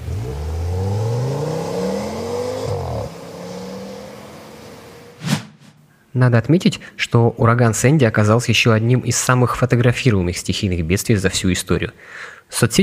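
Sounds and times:
car engine revving hard: 0.0 - 5.2
sharp brief bang: 5.2 - 5.9
speech: 6.2 - 12.8.

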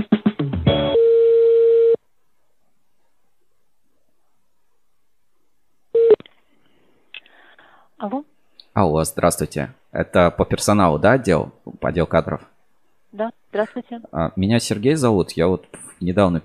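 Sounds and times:
steady telephone tone: 0.9 - 2.0, 6.0 - 6.2
telephone dial-pad beeps during call transfer: 6.0 - 6.2
speech: 8.0 - 12.5, 13.1 - 16.4.

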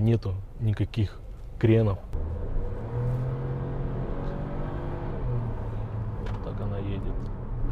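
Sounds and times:
speech: 0.0 - 2.3
150-horsepower car engine humming as it accelerates: 2.1 - 7.7.

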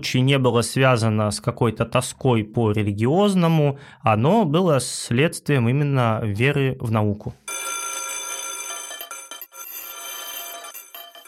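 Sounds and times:
speech: 0.0 - 7.6
loud electric school bell ringing: 7.5 - 11.2.

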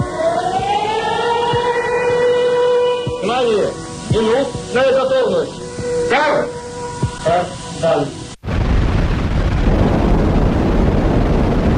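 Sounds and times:
loud siren wailing: 0.0 - 8.3
speech: 3.4 - 6.5
faint low rumble: 8.4 - 11.7.

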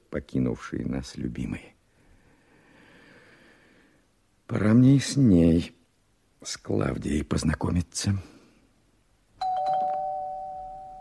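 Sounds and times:
speech: 0.1 - 1.8, 4.5 - 5.8, 6.4 - 8.3
doorbell ringing: 9.4 - 10.9.

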